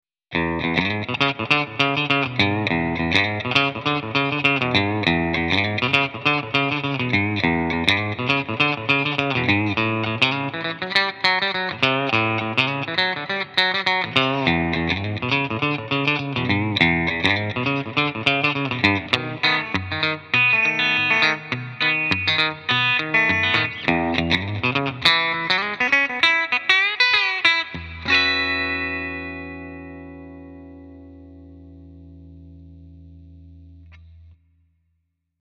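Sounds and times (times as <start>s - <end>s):
clean electric guitar on bridge pickup: 0.3s - 34.5s.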